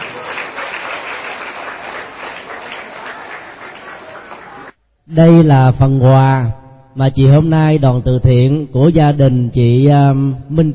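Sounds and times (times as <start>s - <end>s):
crowd at a school applauding: 0.0s - 4.8s
speech: 5.1s - 10.7s.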